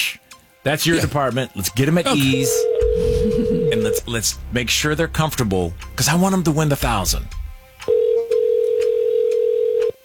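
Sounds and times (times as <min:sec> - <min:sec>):
speech: 0:00.6 - 0:07.4
telephone ringback tone after a number is dialed: 0:02.3 - 0:04.0, 0:07.8 - 0:10.0.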